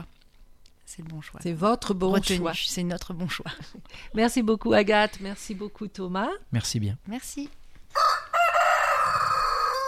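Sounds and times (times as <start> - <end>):
speech: 0.9 - 7.6
rooster crowing: 7.9 - 9.8.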